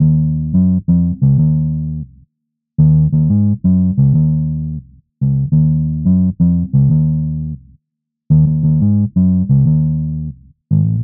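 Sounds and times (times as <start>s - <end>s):
Italian chase bass line in E flat: 0.0s - 2.2s, 2.8s - 11.0s.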